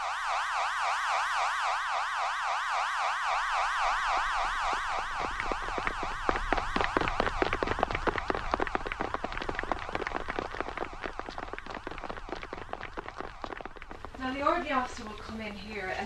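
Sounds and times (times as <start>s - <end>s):
camp warning siren wailing: 0.0s - 9.4s
crackling rumble: 3.5s - 16.0s.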